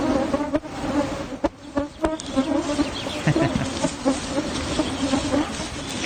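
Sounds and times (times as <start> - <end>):
cloud of biting midges buzzing: 0.0 - 6.0
laughter: 3.1 - 4.0.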